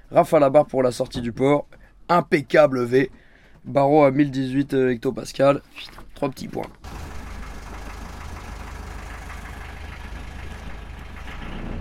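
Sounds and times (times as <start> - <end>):
speech: 0.1 - 7.0
sailboat engine idling while leaving the port of Martigues: 6.8 - 11.7.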